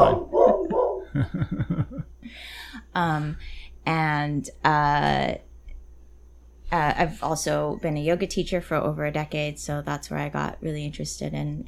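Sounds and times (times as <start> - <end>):
dog barking and yipping: 0.0 - 1.1
laughter: 0.0 - 2.1
speech: 1.2 - 1.8, 2.4 - 5.5, 6.7 - 11.6.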